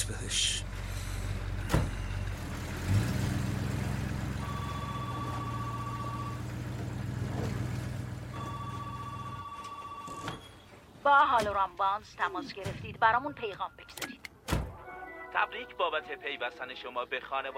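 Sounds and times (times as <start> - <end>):
speech: 0.0 - 0.6, 11.1 - 14.2, 15.4 - 17.5
car engine running: 0.0 - 9.5.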